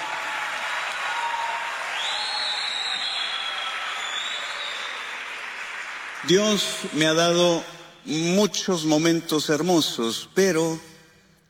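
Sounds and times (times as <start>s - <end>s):
large crowd applauding a performer on stage: 0.0s - 7.1s
faint whistle-like tone: 2.0s - 5.0s
speech: 6.2s - 10.9s.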